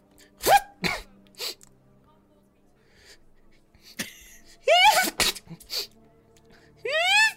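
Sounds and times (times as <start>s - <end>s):
person vocally imitating exaggerated sneezes: 0.4s - 1.6s, 4.7s - 5.9s.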